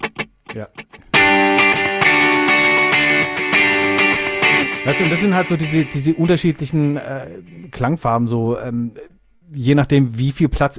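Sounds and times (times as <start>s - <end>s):
electric guitar chords through Echoplex tape delay: 0.0s - 7.7s
speech: 0.6s - 1.6s, 4.8s - 10.7s.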